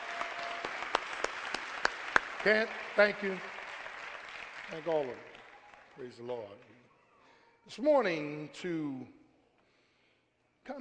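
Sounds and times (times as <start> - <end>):
audience applauding with hand clapping: 0.0 - 6.7
speech: 2.4 - 3.6, 4.7 - 5.3, 6.0 - 6.8, 7.7 - 9.2.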